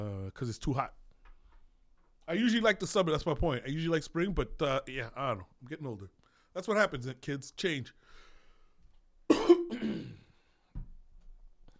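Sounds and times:
speech: 0.4s - 1.0s, 2.3s - 8.2s
harsh cough: 9.3s - 10.4s
throat clearing: 9.3s - 10.4s.

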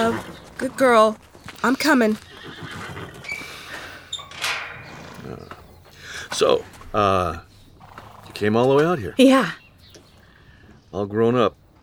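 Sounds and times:
restless upset horse whinnying: 0.0s - 1.0s, 1.6s - 5.7s, 7.8s - 8.4s
speech: 0.0s - 2.7s, 6.3s - 7.5s, 8.4s - 9.6s, 10.9s - 11.6s.

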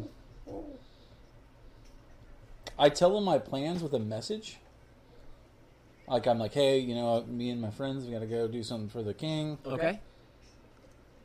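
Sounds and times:
pigeon cooing: 0.0s - 1.2s
speech: 2.8s - 4.6s, 6.1s - 10.1s.

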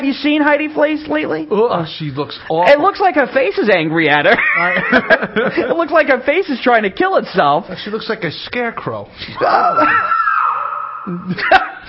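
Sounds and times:
speech: 0.0s - 10.2s, 11.0s - 11.8s
laughter: 4.3s - 5.9s, 9.5s - 10.4s, 11.1s - 11.8s
person letting out a loud drawn-out mock scream: 9.4s - 11.4s.

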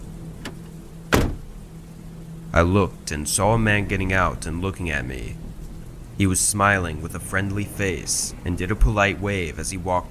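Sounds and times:
low steady engine-like hum: 0.0s - 10.0s
car door latch click and clunk: 0.4s - 1.6s
speech: 2.5s - 5.5s, 6.2s - 10.0s.

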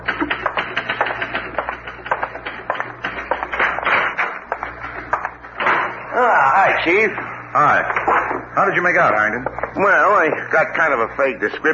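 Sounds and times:
typewriter clacking: 0.0s - 5.4s
speech: 6.8s - 11.7s.

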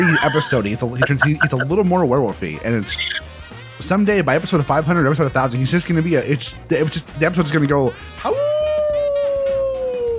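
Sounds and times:
laughter: 0.0s - 1.7s
speech: 0.2s - 3.2s, 3.8s - 8.5s
man imitating a wolf howl: 8.3s - 10.1s.

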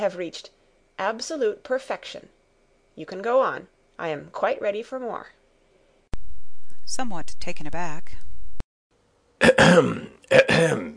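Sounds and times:
speech: 0.0s - 2.4s, 3.0s - 5.4s, 6.9s - 8.2s, 9.4s - 10.9s
throaty coughs from someone dictating: 9.4s - 10.9s.

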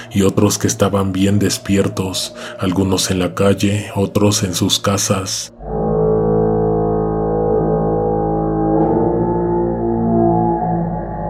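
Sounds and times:
speech: 0.2s - 5.6s
loud sustained electronic horn-like blare with stacked tones: 5.6s - 11.2s.

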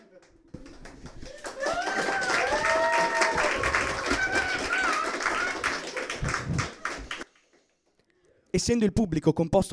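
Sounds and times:
crowd applauding: 0.1s - 7.5s
crowd voices and whoops: 1.2s - 7.2s
speech: 8.6s - 9.7s.

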